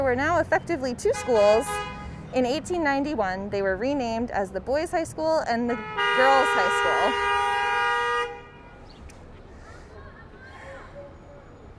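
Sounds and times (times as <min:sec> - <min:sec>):
speech: 0:00.0 - 0:07.4
low rumble of street traffic: 0:00.0 - 0:11.7
car horn blaring in Brooklyn street traffic: 0:01.1 - 0:02.1, 0:05.7 - 0:08.8.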